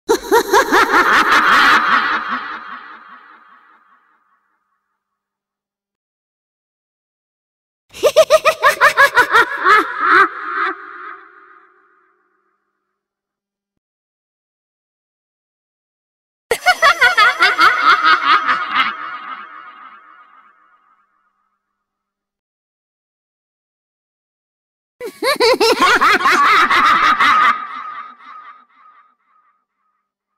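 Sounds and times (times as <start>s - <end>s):
creepy horror laughter: 0.1s - 4.2s, 7.9s - 12.1s, 16.5s - 20.4s, 25.0s - 29.5s.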